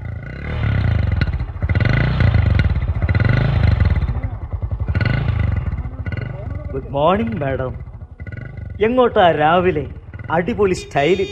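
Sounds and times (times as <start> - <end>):
vehicle engine revving while reversing: 0.0 - 11.3
speech: 6.9 - 7.9, 8.8 - 11.3.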